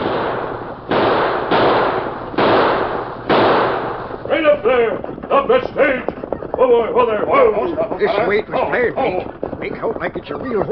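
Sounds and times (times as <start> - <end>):
gunshots fired into the air during a staged stagecoach holdup: 0.0 - 6.0
speech: 6.7 - 10.6.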